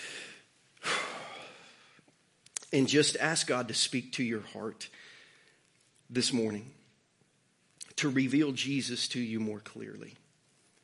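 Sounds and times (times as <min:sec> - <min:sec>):
deep breath drawn in slowly: 0:00.0 - 0:02.0, 0:04.9 - 0:05.6
speech: 0:02.7 - 0:05.1, 0:06.1 - 0:06.8, 0:08.0 - 0:10.2.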